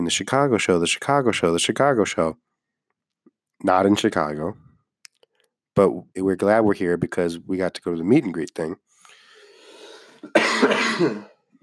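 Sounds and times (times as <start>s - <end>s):
speech: 0.0s - 2.5s, 3.6s - 4.6s, 5.8s - 8.8s, 10.2s - 11.3s
harsh raspy cough: 10.2s - 11.4s
throat-clearing rumble: 10.3s - 11.4s.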